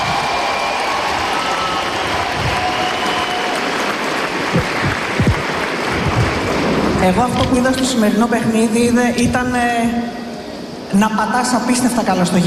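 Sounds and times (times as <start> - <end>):
crowd applauding: 0.0 - 7.0
speech: 7.0 - 10.2, 10.9 - 12.4.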